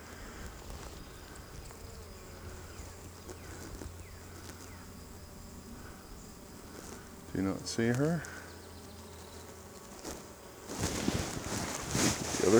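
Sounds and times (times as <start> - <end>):
honeybees buzzing on an open hive frame of capped brood: 0.0 - 12.5
speech: 7.4 - 8.4.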